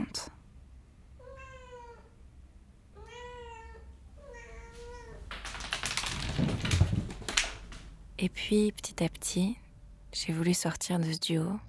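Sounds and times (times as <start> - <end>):
female cat meowing in long drawn-out wails: 1.2 - 2.2, 3.0 - 5.2
loud scratchy rustling and clattering: 5.2 - 8.0
speech: 8.2 - 9.6, 10.2 - 11.6.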